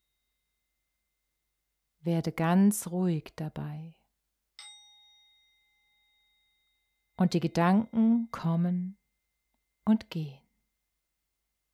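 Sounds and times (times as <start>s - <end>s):
speech: 2.0s - 3.8s, 7.2s - 9.0s, 9.8s - 10.4s
singing bowl struck and ringing: 4.6s - 8.4s.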